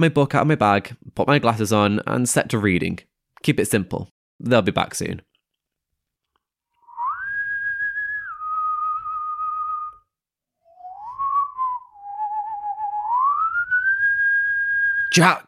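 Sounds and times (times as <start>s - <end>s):
speech: 0.0s - 5.3s, 15.2s - 15.4s
person whistling a clear sustained tune: 6.8s - 10.1s, 10.7s - 15.2s.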